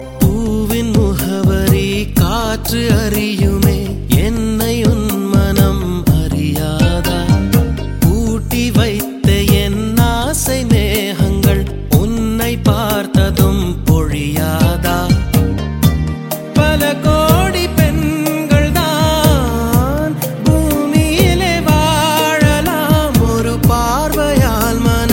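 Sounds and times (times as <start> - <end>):
love song ringtone: 0.0 - 12.2, 12.8 - 25.1.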